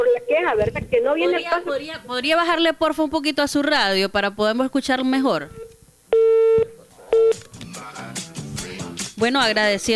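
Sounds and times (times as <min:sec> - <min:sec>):
speech: 0:00.0 - 0:05.6, 0:09.2 - 0:09.9
telephone busy tone on a phone-in line after a dropped call: 0:05.5 - 0:07.4.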